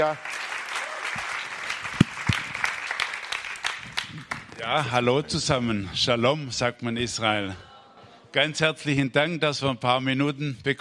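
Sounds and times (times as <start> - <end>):
speech: 0.0 - 0.4, 4.6 - 7.7, 8.4 - 10.8
church congregation applause during a service: 0.0 - 5.2.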